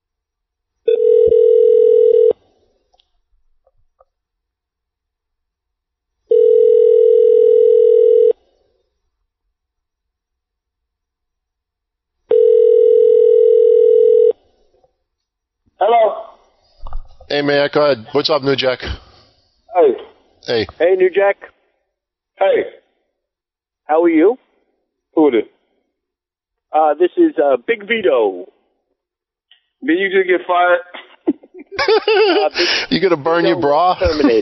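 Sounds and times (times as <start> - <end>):
phone line ring tones while calling: 0.9 - 2.4, 6.3 - 8.4, 12.3 - 14.4
speech: 17.4 - 19.1, 20.5 - 21.5, 22.4 - 22.8, 23.9 - 24.4, 25.2 - 25.6, 26.7 - 28.6, 29.8 - 31.0, 31.8 - 34.3
laughter: 30.9 - 34.3
voice answering the phone: 33.4 - 34.3.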